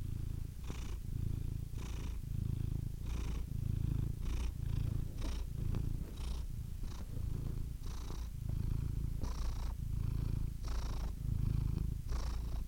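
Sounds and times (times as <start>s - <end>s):
domestic cat giving a soft continuous purr: 0.0s - 12.6s.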